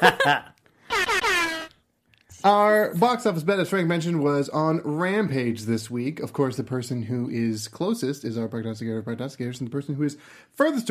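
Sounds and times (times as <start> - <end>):
speech: 0.0 - 0.5, 2.4 - 10.8
loud air horn blasts: 0.9 - 1.7.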